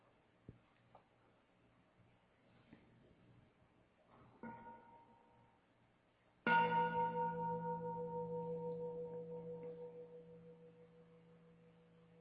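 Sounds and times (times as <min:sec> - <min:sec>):
meditation bell struck: 0:06.5 - 0:12.2.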